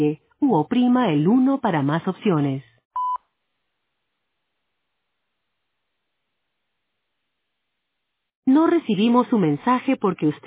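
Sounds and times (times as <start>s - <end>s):
speech: 0.0s - 2.7s, 8.6s - 10.4s
voicemail recording beep from a Spanish-language phone system: 3.0s - 3.2s.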